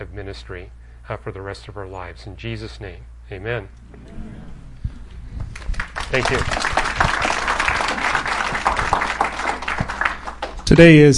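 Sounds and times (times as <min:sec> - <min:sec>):
speech: 0:00.1 - 0:04.4, 0:06.1 - 0:06.9, 0:10.7 - 0:11.1
audience clapping: 0:05.4 - 0:11.0.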